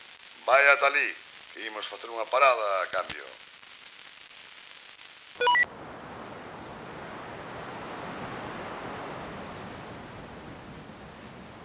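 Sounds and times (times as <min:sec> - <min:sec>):
speech: 0:00.5 - 0:03.5
brief electronic chime: 0:05.4 - 0:05.7
wind: 0:05.7 - 0:11.6
rough sea surf: 0:05.8 - 0:11.6.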